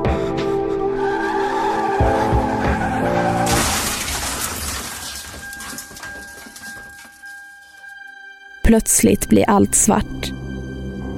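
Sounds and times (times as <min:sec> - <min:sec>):
Mini Cooper tires skidding and squealing on an icy, patchy road: 0:01.0 - 0:05.2
loud, harsh noisy burst: 0:03.2 - 0:05.8
speech: 0:08.7 - 0:10.4.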